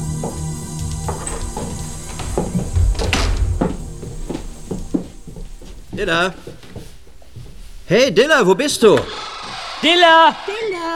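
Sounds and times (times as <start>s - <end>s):
shuffling footsteps of people entering: 0.0s - 9.8s
front door of a house pushed open: 0.3s - 5.0s
soft knocks and thumps of a front door: 1.0s - 7.6s
speech: 6.0s - 6.6s, 7.9s - 10.6s.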